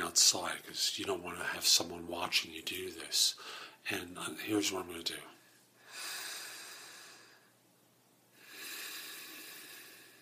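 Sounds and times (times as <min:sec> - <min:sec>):
speech: 0:00.2 - 0:05.4
deep breath in as a calming exercise: 0:03.4 - 0:03.8, 0:05.8 - 0:07.6, 0:08.3 - 0:10.1.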